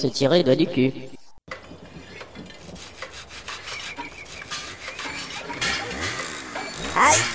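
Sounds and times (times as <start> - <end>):
speech: 0.0 - 1.2
hammer blows on a building site: 1.5 - 7.3
wood being sawed on a building site: 1.9 - 7.3.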